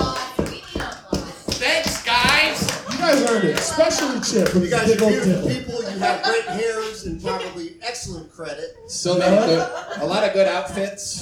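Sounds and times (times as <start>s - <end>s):
audience applause from a live evening crowd: 0.0s - 5.3s
laughter: 2.4s - 8.2s, 8.8s - 11.2s
speech: 3.2s - 11.2s.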